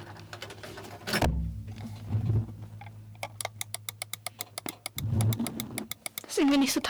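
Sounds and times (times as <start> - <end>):
crisp computer mouse clicks: 3.2 - 6.3
speech: 6.4 - 6.8.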